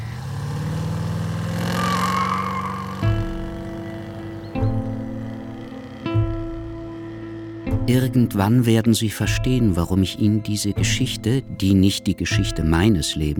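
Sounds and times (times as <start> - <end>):
car engine pulling away: 0.0 - 8.8
speech: 7.9 - 13.3.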